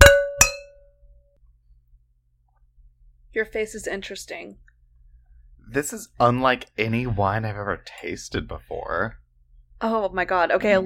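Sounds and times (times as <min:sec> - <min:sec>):
wine glasses clinking in a toast: 0:00.0 - 0:00.8
speech: 0:03.4 - 0:04.7, 0:05.7 - 0:09.2, 0:09.8 - 0:10.8.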